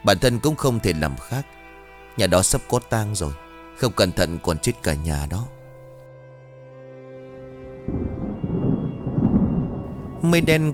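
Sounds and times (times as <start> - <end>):
speech: 0.0 - 1.6, 2.2 - 5.6, 10.2 - 10.7
dry thunder rumbling: 7.8 - 10.7.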